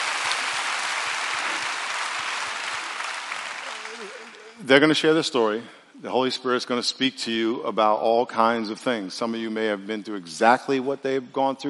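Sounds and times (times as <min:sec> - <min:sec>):
crowd clapping for a man who has come up to speak: 0:00.0 - 0:04.6
speech: 0:04.0 - 0:11.6.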